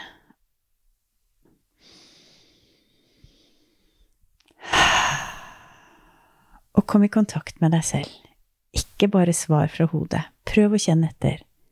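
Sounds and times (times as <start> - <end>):
slow quiet breath in through the nose as a breathing exercise: 1.8 - 6.4
loud long sighing exhale: 4.6 - 6.3
speech: 6.9 - 8.2, 8.8 - 11.5.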